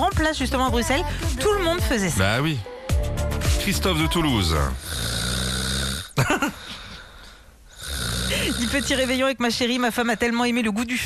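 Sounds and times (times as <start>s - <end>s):
speech: 0.3s - 5.2s, 6.2s - 6.8s, 8.4s - 11.0s
loud rasping snoring: 4.6s - 6.2s, 7.7s - 9.2s.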